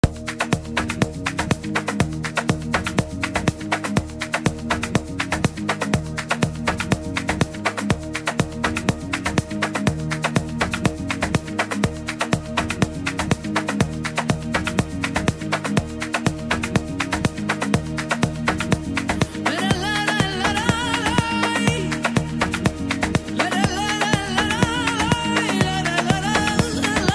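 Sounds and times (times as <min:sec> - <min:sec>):
afrohouse flamenco music: 0:00.0 - 0:27.1.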